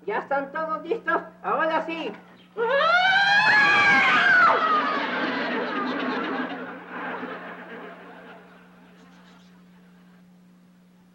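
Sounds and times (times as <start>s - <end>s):
speech: 0.1s - 3.6s
children giggling: 3.6s - 9.3s.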